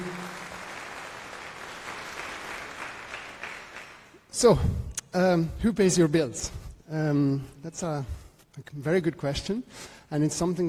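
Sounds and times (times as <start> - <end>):
room full of people clapping: 0.0 - 4.2
speech: 4.4 - 10.6.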